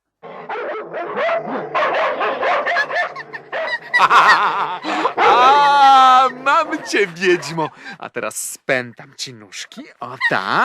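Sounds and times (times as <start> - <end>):
small dogs barking while chasing a hare: 0.2 - 7.7
laughter: 3.6 - 8.0, 9.8 - 10.6
speech: 4.0 - 5.0, 6.4 - 10.6.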